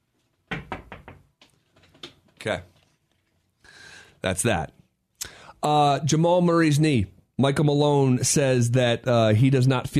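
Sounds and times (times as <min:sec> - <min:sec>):
solid knocks on wood: 0:00.5 - 0:01.3
speech: 0:02.4 - 0:02.7, 0:04.2 - 0:04.8, 0:05.6 - 0:09.9.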